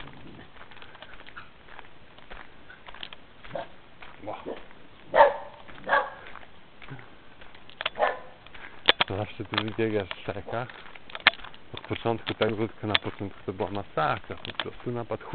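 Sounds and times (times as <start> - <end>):
small dog barking: 3.5 - 3.8, 4.5 - 6.2, 8.0 - 8.4
speech: 4.2 - 4.7, 9.4 - 10.9, 11.9 - 15.3.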